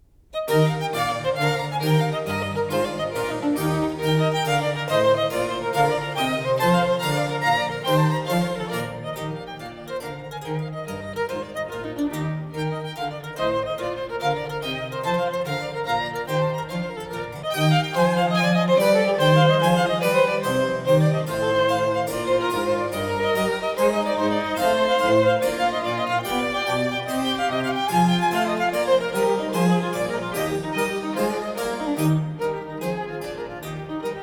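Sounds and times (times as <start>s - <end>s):
trio sonata for two violins and basso continuo: 0.1s - 34.2s.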